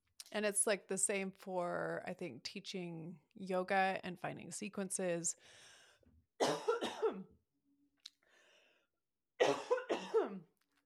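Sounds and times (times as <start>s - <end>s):
speech: 0.3s - 5.7s, 6.4s - 7.3s
harsh coughing: 6.4s - 7.3s, 9.4s - 10.5s.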